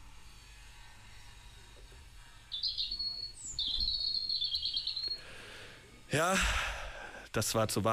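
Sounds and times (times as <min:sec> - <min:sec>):
European robin singing: 0:02.5 - 0:05.6
speech: 0:06.1 - 0:06.7, 0:07.4 - 0:07.9.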